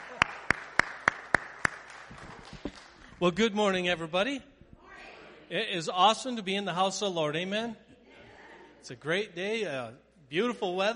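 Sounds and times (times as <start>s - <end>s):
audience clapping in unison: 0.0s - 3.2s
speech: 3.2s - 4.5s, 5.5s - 7.8s, 8.8s - 10.9s.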